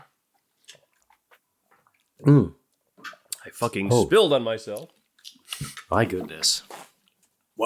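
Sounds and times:
speech: 2.2s - 2.6s, 3.5s - 5.0s, 5.9s - 6.8s
slurping sip of a blended strawberry daiquiri: 5.4s - 7.0s.

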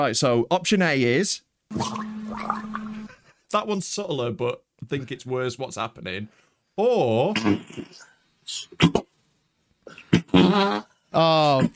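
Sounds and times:
speech: 0.0s - 2.6s, 3.5s - 9.0s, 9.9s - 11.7s
short sputtering fart noises: 1.7s - 3.1s, 7.4s - 9.2s, 9.8s - 11.0s.

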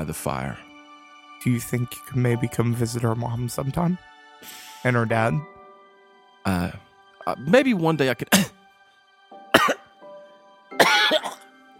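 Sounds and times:
speech: 0.1s - 0.7s, 1.4s - 5.6s, 6.4s - 8.6s
voice imitating a cat coughing up a hairball: 9.6s - 9.8s, 10.8s - 11.4s.

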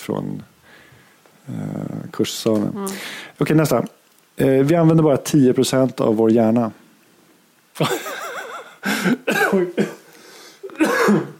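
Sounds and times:
speech: 0.0s - 0.6s, 1.5s - 6.8s, 7.8s - 8.0s, 9.0s - 10.0s
person coughing with rasping throaty bursts: 9.0s - 10.0s, 10.7s - 11.3s.

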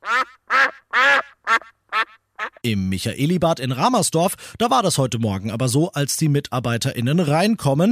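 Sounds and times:
duck quacking: 0.0s - 2.6s
speech: 2.6s - 7.9s.

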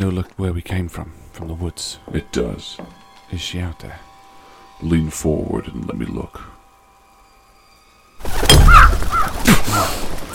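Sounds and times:
speech: 0.0s - 4.1s, 4.8s - 6.5s
crow wings flapping: 8.2s - 10.3s
crow cawing harshly: 8.5s - 10.0s.

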